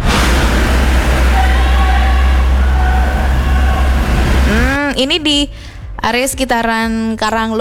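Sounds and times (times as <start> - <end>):
faint tonal whines: 0.0 - 4.8
dense heavy traffic on an arterial road: 0.0 - 6.0
speech: 5.0 - 7.5.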